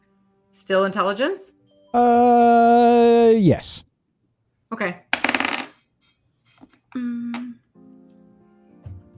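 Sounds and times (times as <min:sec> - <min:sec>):
speech: 0:00.5 - 0:03.9, 0:04.7 - 0:05.0, 0:06.9 - 0:07.6
brief voiced sounds: 0:02.7 - 0:03.8
six-sided dice tumbling and settling on a table: 0:05.1 - 0:05.8.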